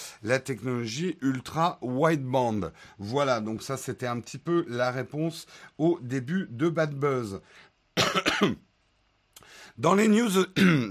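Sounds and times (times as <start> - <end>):
speech: 0.2 - 8.7, 9.8 - 10.8
person coughing: 8.0 - 8.6, 10.6 - 10.8
throat clearing: 10.6 - 10.8.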